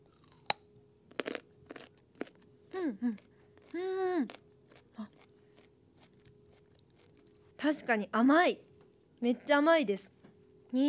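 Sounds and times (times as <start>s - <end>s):
raw carrot being bitten and chewed: 0.0s - 7.4s
person making short murmured humming sounds: 2.7s - 4.3s
speech: 2.9s - 4.4s, 7.6s - 10.1s.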